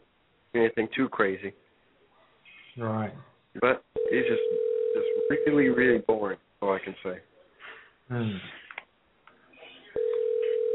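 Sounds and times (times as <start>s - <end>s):
speech: 0.6s - 1.6s, 2.8s - 7.3s, 8.1s - 8.6s
phone call ringing tone: 4.0s - 5.8s, 10.0s - 10.7s.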